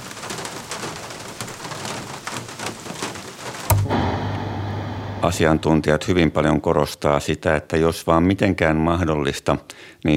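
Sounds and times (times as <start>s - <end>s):
steady rain: 0.0s - 5.6s
low steady hum: 3.7s - 6.3s
speech: 5.2s - 10.1s.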